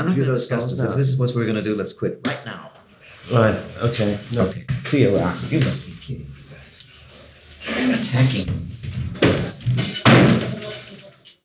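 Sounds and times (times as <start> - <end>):
speech: 0.0 - 2.7, 3.3 - 6.3, 7.8 - 9.5
hotel room door slammed open: 7.7 - 11.1.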